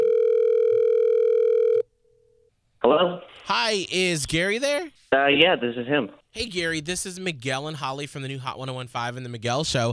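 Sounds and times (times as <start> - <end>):
electronic ringing tone of an outgoing phone call: 0.0 - 1.9
speech: 3.4 - 9.9.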